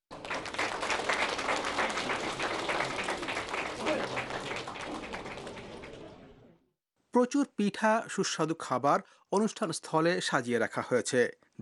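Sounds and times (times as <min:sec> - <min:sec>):
audience applause after a Bengali cultural performance at a New Year celebration: 0:00.1 - 0:06.4
speech: 0:07.2 - 0:11.6.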